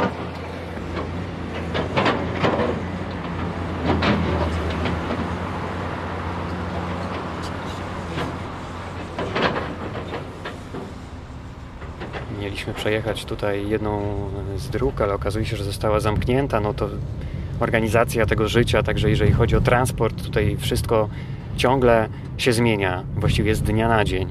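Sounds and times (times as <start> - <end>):
metallic clanks and crashes of building demolition: 0.0 - 5.4, 7.0 - 14.7
heavy demolition machinery rumbling: 0.0 - 24.2
speech: 12.6 - 24.2.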